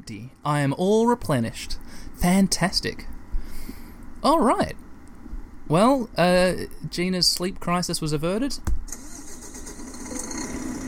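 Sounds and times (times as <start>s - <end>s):
speech: 0.1s - 3.1s, 4.2s - 4.8s, 5.7s - 8.8s
truck engine starting and idling in a video game: 8.9s - 10.8s.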